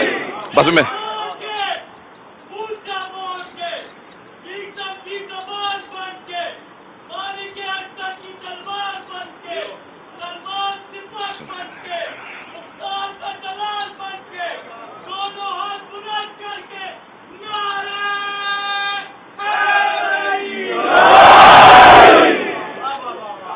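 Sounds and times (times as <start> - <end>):
large crowd at a gathering shouting a slogan in unison: 0.0 - 1.4, 19.4 - 22.8
speech: 0.6 - 1.0.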